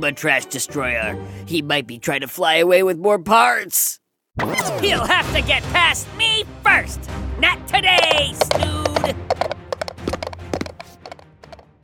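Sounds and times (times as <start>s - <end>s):
speech: 0.0s - 9.5s
hooves of a small mechanical pygmy goat clip-clopping: 7.9s - 11.7s.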